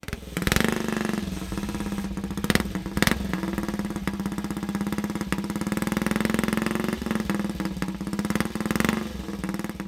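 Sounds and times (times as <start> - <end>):
racing motorcycle engine: 0.0 - 9.8.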